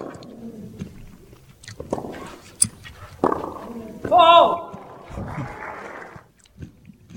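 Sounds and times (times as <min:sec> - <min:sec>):
broadcaster chewing food on a live microphone: 0:00.0 - 0:04.1, 0:06.3 - 0:07.1.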